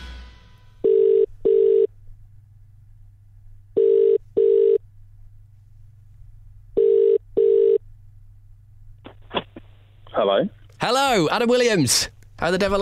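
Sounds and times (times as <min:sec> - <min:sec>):
telephone ringing tone heard down the line: 0:00.8 - 0:01.9, 0:03.7 - 0:04.8, 0:06.7 - 0:07.8
speech: 0:10.4 - 0:12.8.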